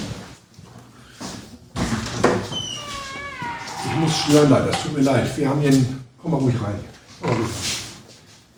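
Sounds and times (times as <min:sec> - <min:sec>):
door opening: 0:02.0 - 0:05.2
broad rumbling scraping noise: 0:03.5 - 0:05.2
speech: 0:04.2 - 0:07.8.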